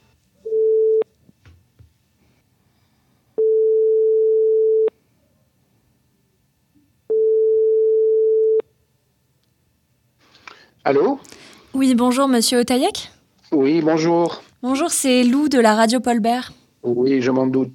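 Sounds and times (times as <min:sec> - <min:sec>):
telephone ringback tone from a call for a phone interview: 0:00.5 - 0:01.0, 0:03.4 - 0:04.9, 0:07.1 - 0:08.6
speech: 0:10.9 - 0:17.7.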